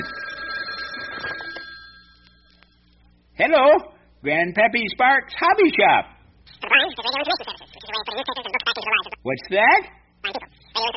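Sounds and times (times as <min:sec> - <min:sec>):
telephone ringing in a hobby shop: 0:00.0 - 0:02.8
speech: 0:03.4 - 0:06.1, 0:06.7 - 0:10.9.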